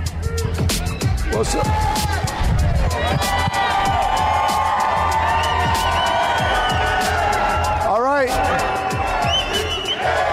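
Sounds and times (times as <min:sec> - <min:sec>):
large crowd cheering and shouting at a press conference: 0:00.0 - 0:10.3
rhythmic thumping: 0:00.0 - 0:10.3
speech: 0:01.4 - 0:02.1.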